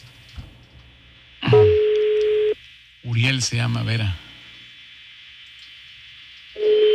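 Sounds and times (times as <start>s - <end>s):
hissy telephone line: 1.4s - 4.8s, 6.5s - 6.9s
telephone ringback tone from an unanswered call: 1.5s - 2.6s, 6.6s - 6.9s
speech: 3.2s - 4.2s.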